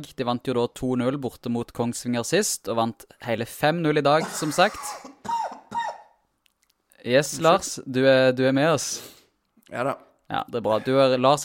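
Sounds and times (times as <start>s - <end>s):
speech: 0.0s - 5.4s, 7.0s - 11.4s
man coughing harshly: 4.2s - 6.2s
rough throat clearing: 4.2s - 6.2s.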